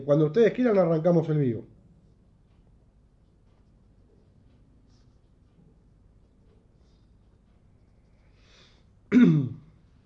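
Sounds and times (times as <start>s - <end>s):
speech: 0.0s - 1.8s
rough throat clearing with a harsh coughing edge: 9.1s - 9.7s.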